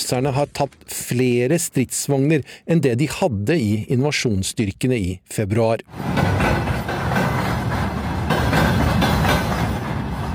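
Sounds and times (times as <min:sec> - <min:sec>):
speech: 0:00.1 - 0:06.7
train rumbling along rails: 0:05.9 - 0:10.3
train wheels clacking over track joints: 0:05.9 - 0:10.3.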